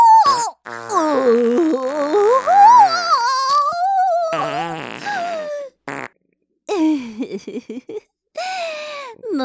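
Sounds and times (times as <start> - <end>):
farts: 0.3 - 3.7, 4.3 - 6.2.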